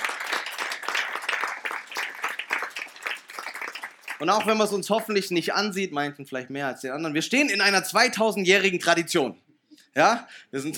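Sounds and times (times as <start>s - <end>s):
audience clapping: 0.0s - 5.3s
speech: 4.2s - 9.4s, 10.0s - 10.7s.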